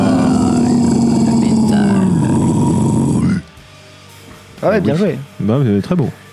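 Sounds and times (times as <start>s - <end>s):
deep rasping guttural metal-style vocal growl: 0.0s - 3.5s
speech: 4.6s - 6.2s.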